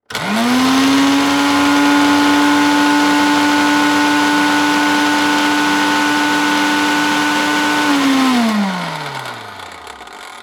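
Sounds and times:
household blender running at high speed: 0:00.0 - 0:10.4.

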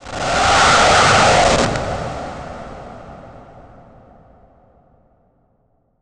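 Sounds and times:
transition static noise production element: 0:00.0 - 0:03.5.

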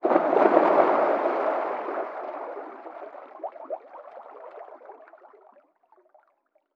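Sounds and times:
splash of a scuba dive into water: 0:00.0 - 0:03.8
underwater sound: 0:00.0 - 0:06.4.

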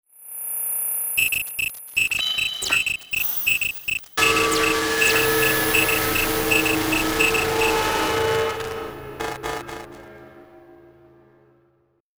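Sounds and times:
distorted electrical beeps with delay: 0:00.5 - 0:10.1.

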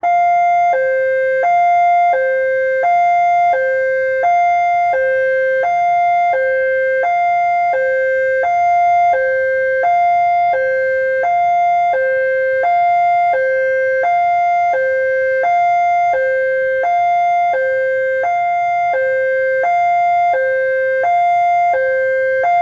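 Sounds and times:
police emergency siren high-low in city: 0:00.0 - 0:22.5.

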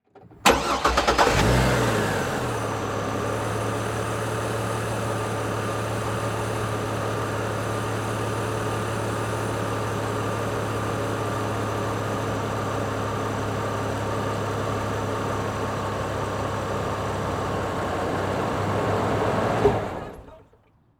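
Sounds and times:
Chevy Trailblazer engine starting, idling and switching off, exterior: 0:00.1 - 0:20.8.

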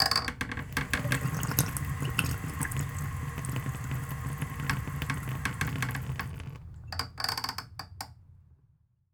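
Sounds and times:
bathroom sink faucet running low: 0:00.0 - 0:06.8.

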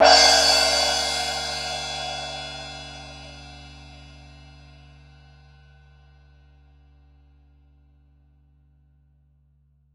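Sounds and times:
cartoon drum cymbal crash: 0:00.0 - 0:03.9.

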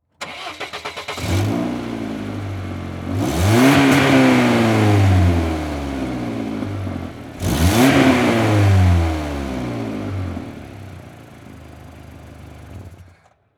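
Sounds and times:
Saturn car engine starting, revving and shutting off, exterior: 0:00.2 - 0:13.2.

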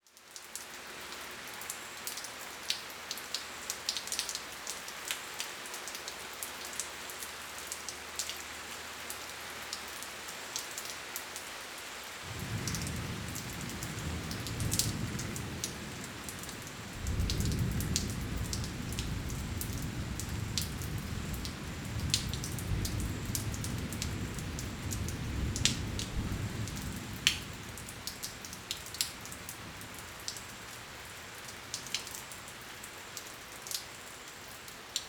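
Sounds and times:
rain drizzle after rain: 0:00.0 - 0:35.0
insects: 0:00.4 - 0:35.0
thunder: 0:12.3 - 0:28.1.

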